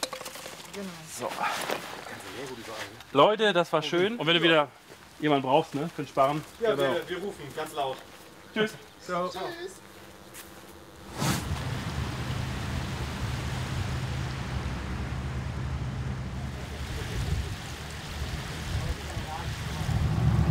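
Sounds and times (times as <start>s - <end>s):
speech: 0.8s - 9.8s
boat engine drone leaving a canal onto a river: 6.5s - 20.4s
rushing wind: 11.1s - 20.4s.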